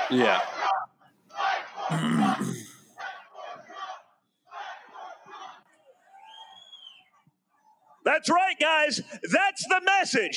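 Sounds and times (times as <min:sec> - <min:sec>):
speech: 0:00.1 - 0:00.6, 0:01.9 - 0:02.7, 0:08.1 - 0:10.3
large crowd chanting a political slogan in unison: 0:00.4 - 0:05.6.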